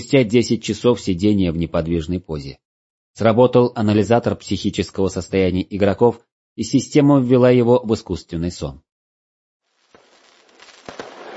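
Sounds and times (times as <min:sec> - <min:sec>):
speech: 0:00.0 - 0:02.6, 0:03.2 - 0:08.8
fireworks crackling and hissing over a valley: 0:09.6 - 0:11.3.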